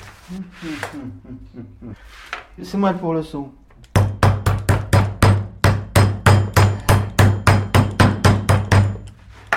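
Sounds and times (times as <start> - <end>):
speech: 0.3 - 4.2
hammer pounding meat to tenderize it: 4.0 - 9.0.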